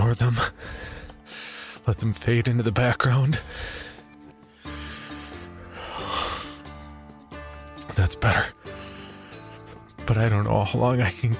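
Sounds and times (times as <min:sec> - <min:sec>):
long deep human breath: 0:00.6 - 0:01.8, 0:03.4 - 0:06.9, 0:08.6 - 0:09.8
speech: 0:01.8 - 0:03.9, 0:08.1 - 0:08.6, 0:10.1 - 0:11.3.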